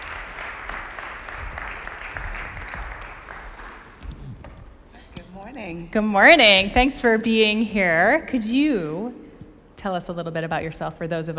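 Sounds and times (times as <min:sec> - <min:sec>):
audience applause welcoming a speaker to the stage: 0:00.0 - 0:04.3
speech: 0:05.6 - 0:09.2, 0:09.8 - 0:11.3.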